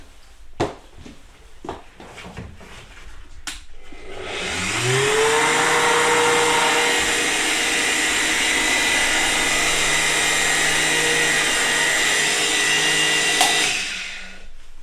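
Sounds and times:
electric blender mixing soap paste: 3.8 - 14.5.

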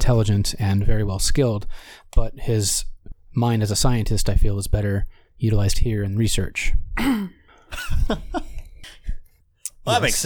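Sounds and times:
speech: 0.0 - 8.5, 9.8 - 10.2
rough throat clearing: 7.0 - 7.6.

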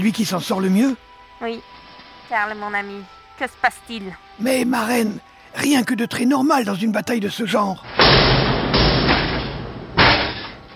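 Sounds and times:
debris rumbling: 0.0 - 4.9, 7.8 - 10.7
speech: 0.0 - 8.4
wooden door being battered and smashed in: 7.8 - 10.7.

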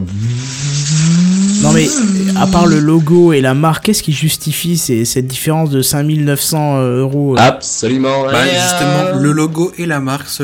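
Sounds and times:
car engine accelerating with a rising hum: 0.0 - 3.7
speech: 1.8 - 10.4.

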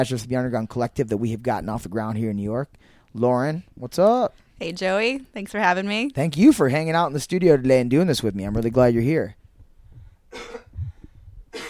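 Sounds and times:
speech: 0.0 - 9.4
harsh coughs: 10.3 - 11.6.

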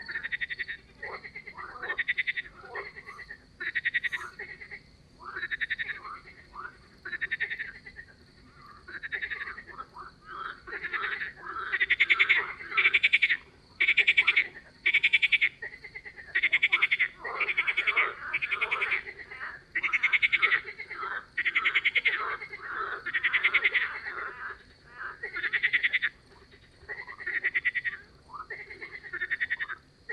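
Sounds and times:
chorus of frogs croaking: 0.0 - 30.1.

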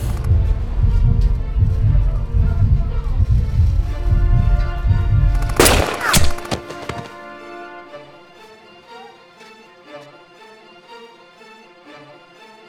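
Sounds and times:
low rumbling noise: 0.0 - 6.0
rifle gunshot: 5.4 - 7.2.

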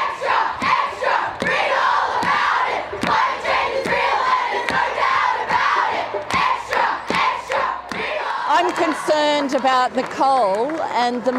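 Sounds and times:
large outdoor protest crowd chanting and shouting: 0.0 - 11.0
sharp percussive thumps amid the rally: 0.6 - 8.2
speech: 8.6 - 11.3.

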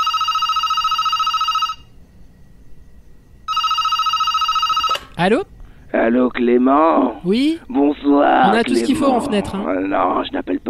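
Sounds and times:
telephone ringing on an outgoing call: 0.0 - 1.9, 3.5 - 5.1
speech: 5.2 - 10.6.

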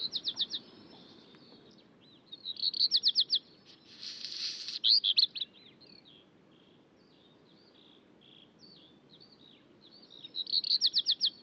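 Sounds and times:
Black Redstart singing in high-mountain alpine pasture at dawn: 0.0 - 6.2, 8.6 - 11.4.

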